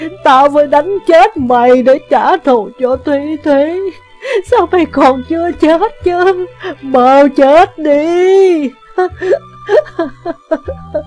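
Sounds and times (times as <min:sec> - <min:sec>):
low sustained musical tone: 0:00.0 - 0:11.0
speech: 0:00.0 - 0:11.0
mother wailing and sobbing in anguish: 0:04.2 - 0:11.0.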